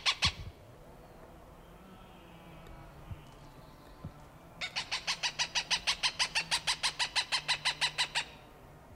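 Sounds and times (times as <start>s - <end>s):
Cooper's hawk calling harsh cak notes: 0.0s - 0.6s, 4.6s - 8.5s.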